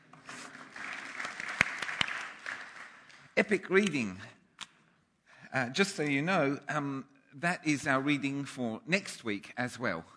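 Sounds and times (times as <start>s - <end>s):
audience applause: 0.4s - 3.4s
speech: 3.4s - 4.4s, 5.5s - 10.1s.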